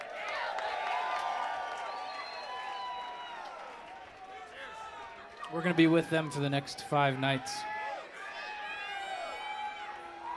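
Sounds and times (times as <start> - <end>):
audience clapping: 0.0 - 10.3
audience high whistles: 1.8 - 3.2
speech: 5.5 - 7.7.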